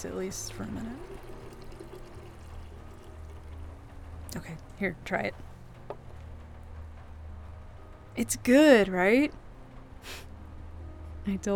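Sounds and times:
speech: 0.0s - 1.3s, 4.3s - 6.0s, 8.2s - 9.4s, 10.0s - 10.3s, 11.2s - 11.5s
mulled wine poured from a vessel into a mug: 0.6s - 3.9s.

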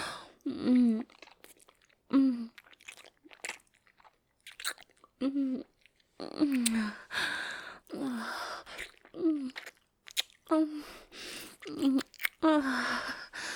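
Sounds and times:
soft moans and gasps while eating: 0.0s - 1.2s, 2.1s - 2.6s, 5.2s - 9.7s, 10.5s - 13.5s
wet chewing: 0.8s - 7.0s, 8.6s - 10.6s, 11.4s - 13.5s.

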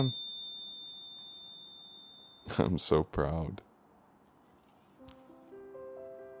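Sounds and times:
speech: 0.0s - 0.2s, 2.5s - 3.7s
oven timer high-pitched electronic tone: 0.0s - 2.7s.

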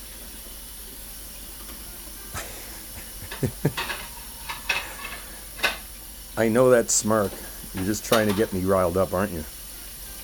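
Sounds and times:
running water hissing: 0.0s - 10.2s
laughter: 2.4s - 3.9s
dishes and cutlery clinking while being washed: 3.3s - 5.9s, 7.2s - 8.6s
speech: 3.4s - 3.9s, 6.4s - 9.6s.

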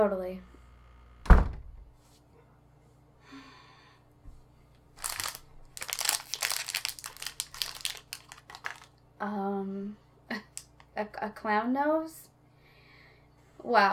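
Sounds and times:
speech: 0.0s - 0.5s, 11.0s - 12.3s, 13.6s - 13.9s
dull thump: 1.2s - 1.8s
paper crinkling and rustling as a delivered package is unwrapped: 4.9s - 9.0s.

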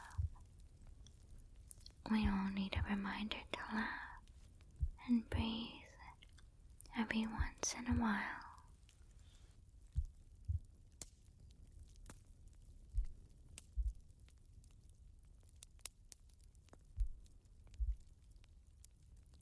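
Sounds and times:
slow heartbeat: 0.0s - 0.5s, 2.1s - 3.0s, 4.8s - 5.5s, 7.2s - 8.3s, 9.9s - 10.8s, 12.9s - 14.0s, 17.0s - 18.1s
faint crackling hiss: 0.0s - 19.4s
speech: 2.1s - 4.1s, 5.1s - 5.8s, 7.0s - 8.4s.

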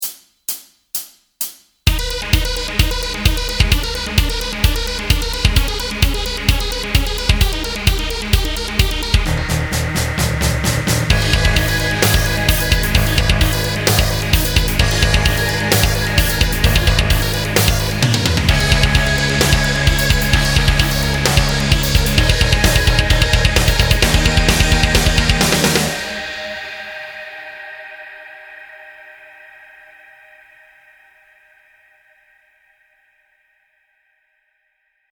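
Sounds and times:
tapping backing track music: 1.9s - 29.0s.

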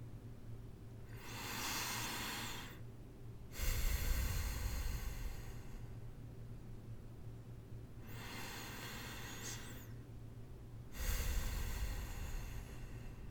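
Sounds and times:
faint steady hum: 0.0s - 13.2s
deep slow breathing during a relaxing massage: 1.0s - 2.9s, 3.5s - 6.2s, 8.0s - 10.0s, 10.9s - 13.2s.

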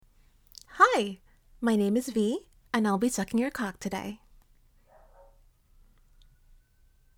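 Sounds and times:
speech: 1.0s - 4.2s
dog barking: 4.8s - 5.4s.

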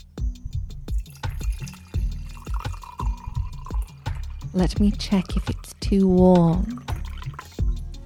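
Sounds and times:
hot drink pouring from a thermos into a cup: 0.9s - 5.8s, 6.6s - 7.6s
speech: 4.6s - 6.9s.

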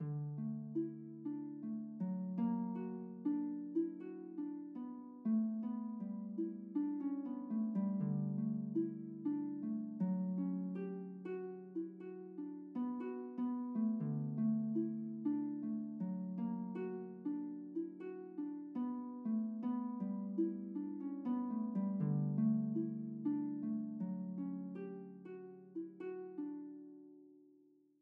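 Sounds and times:
harp music: 0.0s - 27.4s.

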